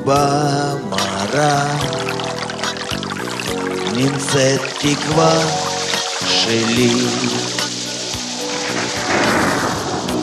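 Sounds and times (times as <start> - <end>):
speech: 0.0 - 2.1, 4.0 - 5.7, 6.4 - 7.6
steady rain: 1.3 - 10.2
low rumble of thunder: 8.3 - 10.2.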